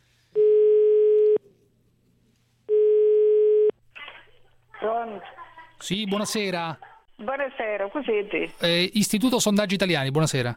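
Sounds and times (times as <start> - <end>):
telephone line tone beeps while dialling a call to a town in Italy: 0.4 - 1.4, 2.7 - 3.7
speech: 5.1 - 10.5.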